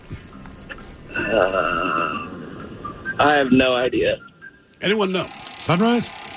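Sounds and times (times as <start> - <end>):
high shrill cricket chirps: 0.2 - 1.8
speech: 1.3 - 2.2, 3.2 - 6.2.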